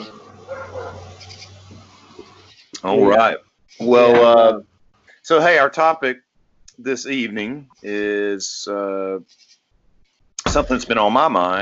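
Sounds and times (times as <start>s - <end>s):
faint murmur: 0.0s - 4.6s
dog barking: 0.4s - 1.2s
speech: 2.8s - 6.2s, 6.8s - 9.5s, 10.5s - 11.6s.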